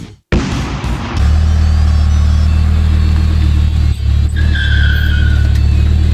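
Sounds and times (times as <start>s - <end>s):
Chevy Colorado pickup truck engine rumbling: 0.3s - 6.1s
Chevy Colorado pickup truck engine cranking: 1.4s - 6.1s.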